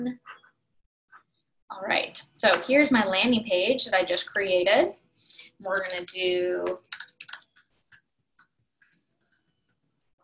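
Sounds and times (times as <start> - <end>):
speech: 0.0 - 0.4, 1.8 - 5.0, 5.6 - 7.0
typing on a computer keyboard: 5.8 - 8.0.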